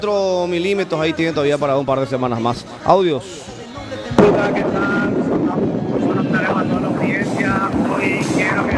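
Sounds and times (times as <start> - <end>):
speech: 0.0 - 5.2
loud steady helicopter roar with wind buffeting: 3.6 - 8.7
sharp thump: 4.0 - 6.8.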